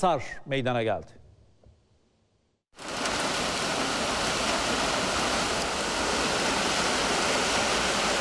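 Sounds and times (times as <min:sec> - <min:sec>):
speech: 0:00.0 - 0:01.2
heavy spring downpour flooding city streets: 0:02.8 - 0:08.1.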